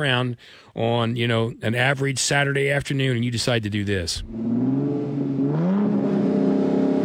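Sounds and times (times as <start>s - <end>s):
speech: 0.0s - 4.8s
car engine revving and accelerating: 4.2s - 7.0s.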